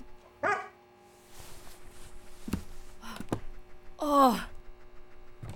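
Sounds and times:
dog barking: 0.4s - 0.8s
speech: 4.1s - 4.5s.

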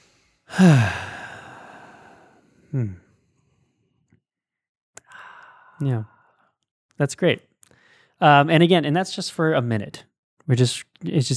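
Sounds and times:
deep breath taken during a relaxation exercise: 0.0s - 3.9s, 5.0s - 6.6s, 7.7s - 8.2s
speech: 0.6s - 1.0s, 2.8s - 3.0s, 5.8s - 6.2s, 7.0s - 7.5s, 8.2s - 11.3s.

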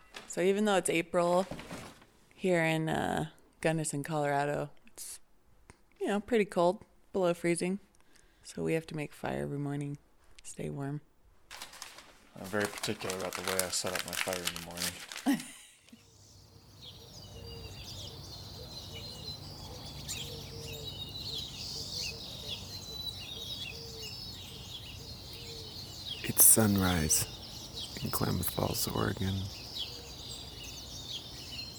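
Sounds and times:
speech: 0.4s - 1.7s, 2.4s - 5.2s, 6.0s - 11.1s, 12.4s - 15.6s, 26.6s - 27.4s, 28.0s - 29.6s
white-crowned sparrows and pine siskins singing at sunrise in Klamath Falls Oregon: 16.0s - 31.7s.

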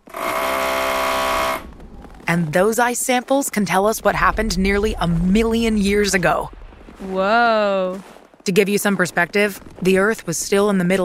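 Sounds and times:
large motorized drill boring deep into Antarctic ice to collect ice samples: 0.0s - 1.7s
speech: 2.3s - 11.0s.

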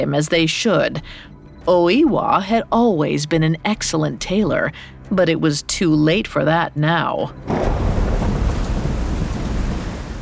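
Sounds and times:
speech: 0.0s - 7.7s
heavy rain pouring at night: 7.5s - 10.2s.

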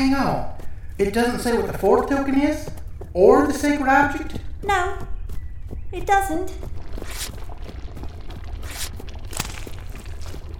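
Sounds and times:
speech: 0.0s - 5.1s, 5.9s - 7.3s
paper dipped and swished in liquid: 6.8s - 10.5s.

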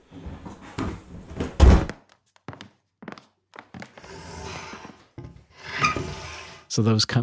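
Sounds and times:
heavy wooden trunk dragged, scraping and squeaking: 3.8s - 6.7s
speech: 6.8s - 7.2s.

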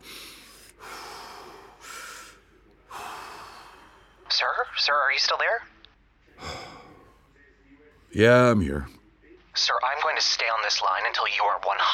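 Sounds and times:
distraught man breathing heavily on a phone call: 0.0s - 4.3s, 6.4s - 7.2s
speech: 4.4s - 5.8s, 8.2s - 9.0s, 9.6s - 11.9s.

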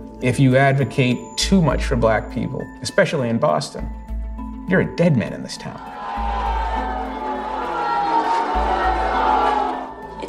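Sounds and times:
speech: 0.2s - 4.0s, 4.7s - 6.3s
large crowd booing and jeering: 5.8s - 10.1s.

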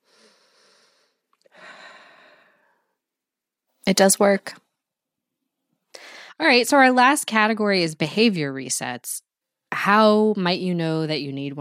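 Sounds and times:
person doing a reset breath of two quick inhales and a long exhale: 0.0s - 3.0s, 5.9s - 6.4s
speech: 3.9s - 4.6s, 6.4s - 11.5s.

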